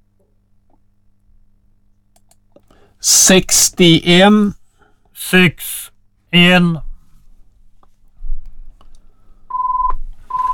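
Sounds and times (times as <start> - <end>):
speech: 3.0 - 4.6, 5.2 - 6.8
telephone ringing with electronic tone bursts: 9.5 - 10.5.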